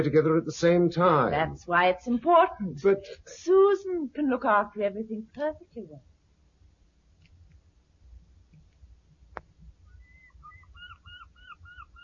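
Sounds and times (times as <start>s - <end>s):
speech: 0.0s - 6.1s
bird calling by the sea: 9.8s - 12.0s.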